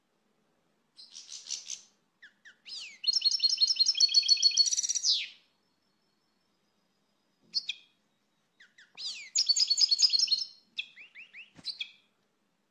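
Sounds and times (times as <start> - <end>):
short finch calls: 1.0 - 6.3, 7.4 - 12.1
finch twittering song: 1.0 - 12.1.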